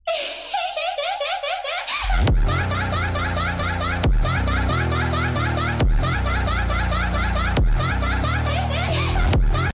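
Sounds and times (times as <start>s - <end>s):
person laughing: 0.1s - 9.7s
phonk music: 2.0s - 9.7s.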